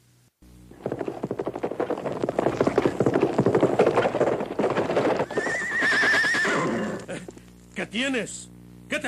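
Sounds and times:
horse hooves stamping and clattering: 0:00.7 - 0:07.8
horse snorting: 0:00.8 - 0:07.3
horse spooked by a venomous snake neighing: 0:04.1 - 0:07.3
speech: 0:07.9 - 0:09.0.

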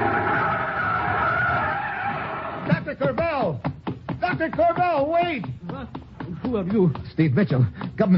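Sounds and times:
car tires skidding as brakes lock: 0:00.0 - 0:02.7
speech: 0:02.9 - 0:03.7, 0:04.4 - 0:05.5, 0:06.5 - 0:08.1.

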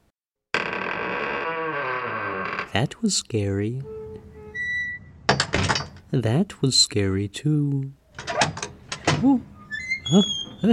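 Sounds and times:
door with strained buzzing creak: 0:00.5 - 0:02.9, 0:03.6 - 0:06.1, 0:08.1 - 0:10.7
speech: 0:02.7 - 0:04.0, 0:06.1 - 0:08.0, 0:09.2 - 0:09.5, 0:10.1 - 0:10.7
door thunking shut: 0:05.3 - 0:06.0.

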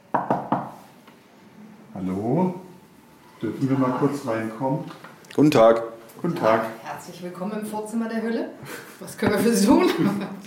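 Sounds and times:
sharp knocks on a door: 0:00.1 - 0:00.7
speech: 0:02.0 - 0:02.6, 0:03.4 - 0:10.4.

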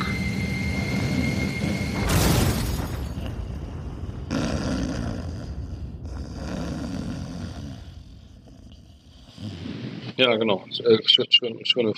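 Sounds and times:
airplane engine roar: 0:00.0 - 0:06.7
speech: 0:10.2 - 0:11.9.

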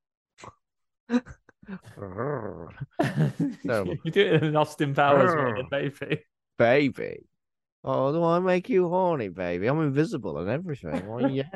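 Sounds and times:
speech: 0:00.4 - 0:11.5
person imitating an alien creature growl: 0:01.7 - 0:03.0
laughter: 0:02.9 - 0:06.2, 0:10.9 - 0:11.5.

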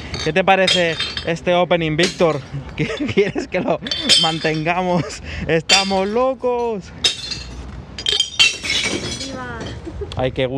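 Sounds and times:
glass bottles smashing into a recycling bin: 0:00.0 - 0:02.5, 0:03.8 - 0:04.9, 0:05.5 - 0:09.8
glass shards tinkling and rattling: 0:00.0 - 0:03.0, 0:03.8 - 0:05.0, 0:05.6 - 0:09.9
speech: 0:00.2 - 0:07.2, 0:10.2 - 0:10.5
laughter: 0:02.5 - 0:04.1, 0:04.7 - 0:05.6, 0:09.8 - 0:10.3.

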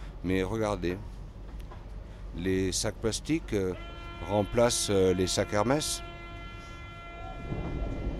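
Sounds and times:
RER commuter train rumbling arriving at station: 0:00.0 - 0:08.1
speech: 0:00.2 - 0:01.1, 0:02.4 - 0:06.1
steady high whining tones: 0:03.6 - 0:08.1.

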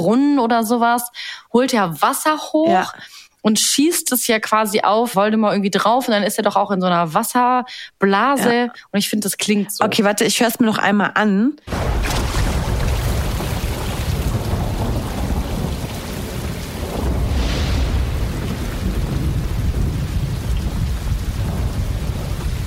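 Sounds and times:
speech: 0:00.0 - 0:12.5
heavy rain hissing and pattering: 0:11.7 - 0:22.6
thunder rumbling low: 0:11.7 - 0:22.6.

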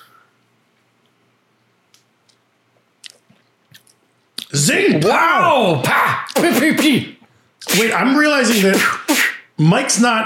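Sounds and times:
wet slurps and lip smacks sipping rhum agricole: 0:03.0 - 0:04.5
speech: 0:04.5 - 0:10.2.

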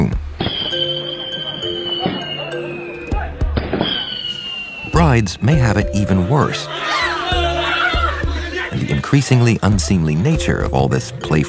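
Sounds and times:
noisy bustling crowd at a wedding celebration in China: 0:00.0 - 0:09.8
tonal whistles: 0:00.4 - 0:05.5
laughter: 0:00.7 - 0:03.4, 0:06.2 - 0:09.5
firecrackers popping at a wedding celebration in China: 0:03.6 - 0:04.9
speech: 0:05.2 - 0:07.1, 0:08.9 - 0:11.4.

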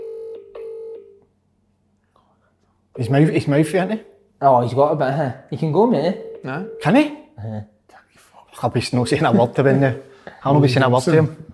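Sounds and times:
electronic ringing tone from a phone line: 0:00.0 - 0:01.2
speech: 0:03.0 - 0:07.7, 0:08.6 - 0:11.5.

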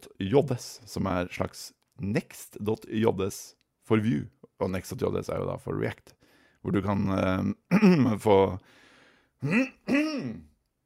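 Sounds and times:
speech: 0:00.2 - 0:08.8, 0:09.4 - 0:10.5
person clearing throat: 0:07.7 - 0:08.2, 0:09.4 - 0:10.5
faint breathy sound: 0:08.6 - 0:09.4.

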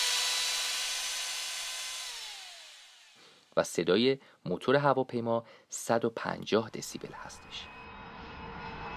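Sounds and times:
power drill drilling into a wall: 0:00.0 - 0:03.5
speech: 0:03.6 - 0:07.8.

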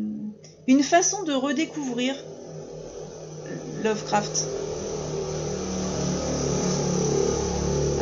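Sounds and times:
speech: 0:00.7 - 0:02.3, 0:03.8 - 0:04.6
car passing by outside the house: 0:01.6 - 0:07.9.

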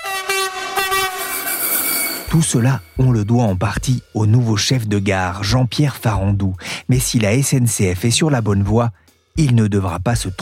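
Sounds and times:
train horn blast: 0:00.0 - 0:03.0
rumbling rail noise: 0:00.0 - 0:03.8
speech: 0:02.3 - 0:10.4.

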